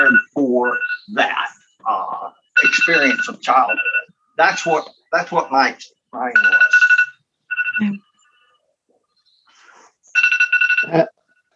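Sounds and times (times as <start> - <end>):
phone alarm timer chiming electronic tones: 0.0 - 5.0, 6.4 - 8.3, 10.1 - 11.5
speech: 2.9 - 6.9, 7.8 - 8.0, 10.9 - 11.1.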